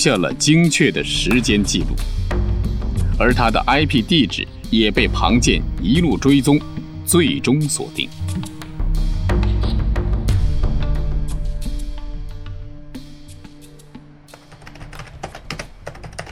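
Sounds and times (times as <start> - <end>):
speech: 0.0 - 2.6, 3.2 - 8.4
music bed: 0.0 - 16.3
typing on a computer keyboard in an office: 14.3 - 16.3.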